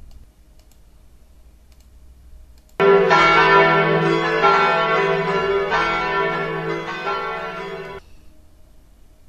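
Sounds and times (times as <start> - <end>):
church clock bell ringing in the Notre-Dame cathedral tower at midnight: 2.8 - 8.0.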